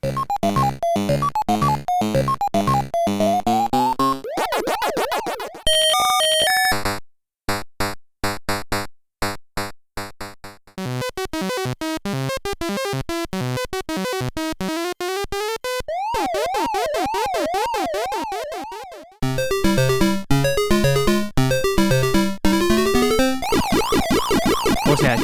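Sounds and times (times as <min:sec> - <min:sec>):
chiptune game soundtracks of arcade and console versions: 0:00.0 - 0:06.8, 0:10.8 - 0:25.2
bleeping arpeggios: 0:03.3 - 0:06.4, 0:15.9 - 0:25.2
warbling sirens in chiptune soundtrack: 0:04.2 - 0:05.7, 0:15.9 - 0:19.2, 0:23.4 - 0:25.2
buzzy square-wave melodies: 0:15.9 - 0:25.2.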